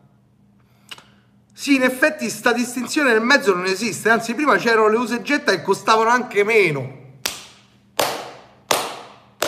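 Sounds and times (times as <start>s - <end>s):
speech: 1.6s - 7.0s
person giving slow applause with loud sharp hand claps: 7.2s - 9.4s.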